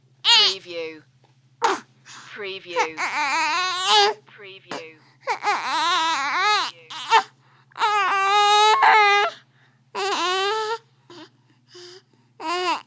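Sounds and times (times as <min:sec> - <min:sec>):
baby whining: 0:00.3 - 0:00.6, 0:02.8 - 0:04.2, 0:05.2 - 0:09.4, 0:10.0 - 0:12.8.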